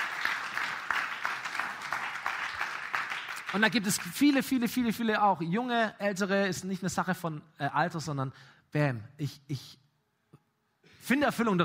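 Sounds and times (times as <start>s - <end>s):
crowd applauding: 0.0s - 4.6s
speech: 3.5s - 9.8s, 11.0s - 11.6s.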